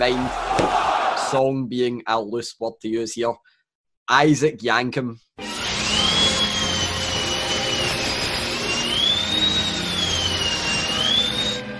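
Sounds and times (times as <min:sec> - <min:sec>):
speech: 0:00.0 - 0:05.5
shrill dentist drill whine in theme music: 0:05.4 - 0:11.6.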